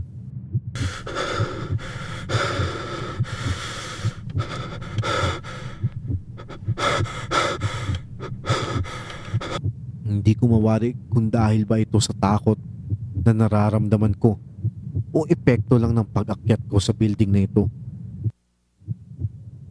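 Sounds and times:
low thumping like a pounding heartbeat: 0:00.0 - 0:09.9, 0:12.7 - 0:13.5, 0:14.6 - 0:16.0, 0:17.6 - 0:19.7
heavy exhausted panting with ragged gasping breaths: 0:00.8 - 0:09.6
speech: 0:10.1 - 0:14.5, 0:15.1 - 0:17.8.

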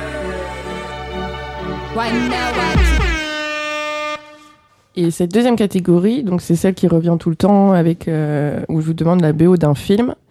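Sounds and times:
brassy horn-like show jingle: 0:00.0 - 0:04.6
speech: 0:02.0 - 0:03.1, 0:05.0 - 0:10.2.

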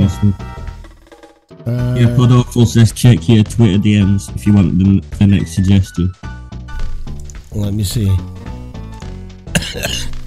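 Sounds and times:
speech: 0:00.2 - 0:00.5, 0:01.7 - 0:06.4, 0:07.6 - 0:08.3
single sharp cough with a rough throaty tail: 0:09.5 - 0:10.1.

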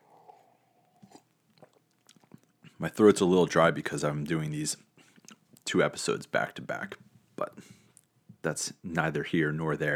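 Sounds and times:
person sipping a drink: 0:00.0 - 0:02.8
faint hum: 0:00.0 - 0:09.9
speech: 0:02.8 - 0:04.9, 0:05.7 - 0:07.8, 0:08.4 - 0:09.9.

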